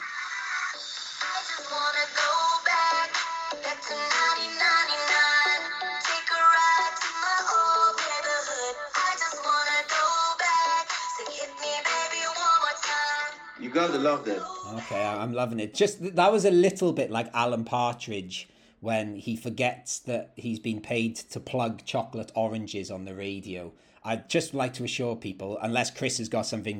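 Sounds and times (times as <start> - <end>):
upbeat pop dance song through a small speaker: 0.0 - 15.9
speech: 13.7 - 26.7.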